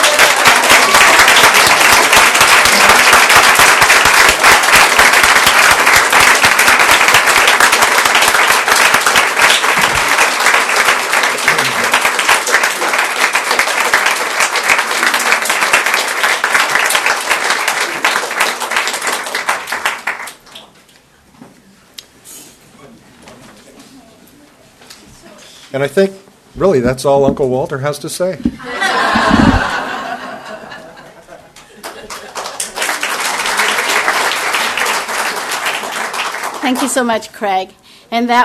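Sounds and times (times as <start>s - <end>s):
large standing audience clapping loudly: 0.0s - 20.7s, 28.7s - 30.8s, 31.6s - 37.1s
speech: 25.8s - 28.7s, 36.7s - 38.4s
laughter: 28.5s - 32.8s.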